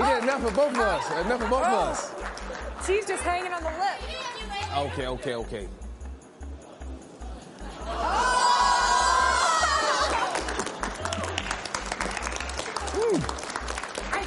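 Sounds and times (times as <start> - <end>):
audience applause with dense clapping: 0.0 - 4.2, 9.7 - 14.2
speech: 0.4 - 5.8, 13.1 - 13.4
high rising shout: 7.9 - 10.3
audience cheers and whoops: 7.9 - 11.5, 12.8 - 13.4.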